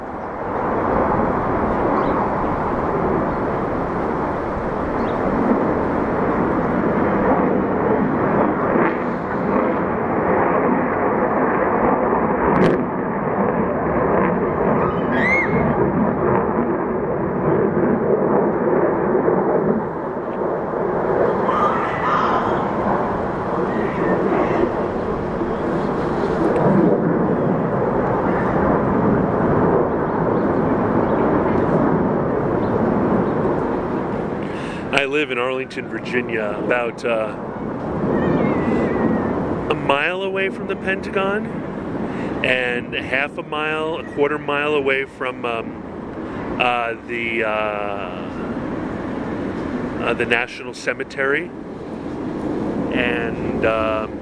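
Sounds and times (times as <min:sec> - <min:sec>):
fighter jet roaring overhead: 0:00.0 - 0:54.1
speech: 0:35.1 - 0:37.4, 0:39.9 - 0:41.8, 0:42.4 - 0:45.8, 0:46.6 - 0:48.4, 0:50.0 - 0:51.6, 0:53.0 - 0:54.1.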